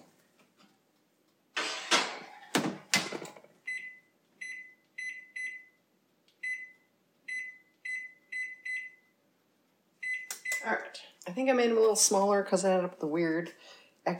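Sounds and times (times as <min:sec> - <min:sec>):
metal pans of donut batter and a small ramekin sliding into an oven: 0:01.6 - 0:03.4
speech: 0:10.7 - 0:14.1.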